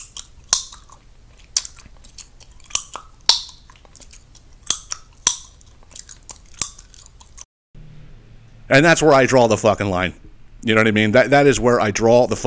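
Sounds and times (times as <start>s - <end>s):
person imitating wet gum chewing and popping: 0.0s - 7.5s
speech: 8.7s - 12.4s.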